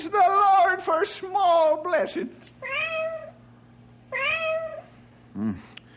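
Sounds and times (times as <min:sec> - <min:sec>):
steady low hum: 0:00.0 - 0:05.9
speech: 0:00.1 - 0:03.0, 0:05.4 - 0:05.8
cat meowing inside a wall: 0:02.6 - 0:03.4, 0:04.1 - 0:04.9.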